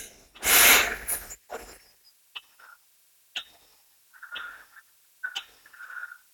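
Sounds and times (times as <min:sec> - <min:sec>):
deep inhale during a breathing exercise: 0:00.0 - 0:01.4.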